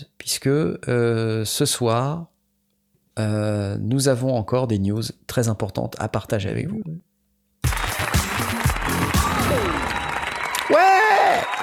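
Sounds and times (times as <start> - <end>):
speech: 0.3 - 2.3, 3.2 - 7.1
applause: 7.6 - 11.6.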